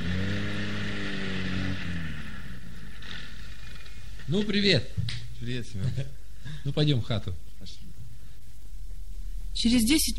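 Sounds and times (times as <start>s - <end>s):
car engine droning as the car is driven into a yard: 0.0s - 4.5s
speech: 4.3s - 7.8s, 9.6s - 10.1s.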